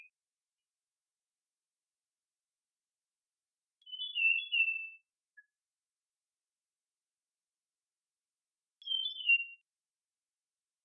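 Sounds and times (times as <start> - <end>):
Iora whistling: 3.9 - 4.9, 8.8 - 9.6.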